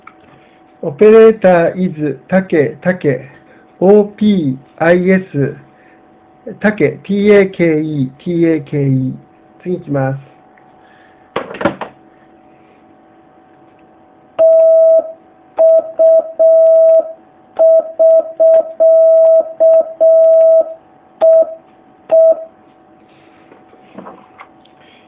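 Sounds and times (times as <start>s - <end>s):
speech: 0.8s - 5.6s, 6.4s - 10.3s
Morse code tone sending the end-of-contact prosign: 14.4s - 22.5s.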